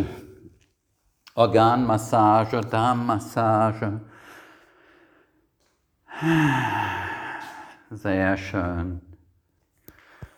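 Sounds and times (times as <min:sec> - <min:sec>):
speech: 0:01.4 - 0:04.1, 0:06.2 - 0:07.0, 0:07.9 - 0:09.1
deep even breathing: 0:04.1 - 0:07.9.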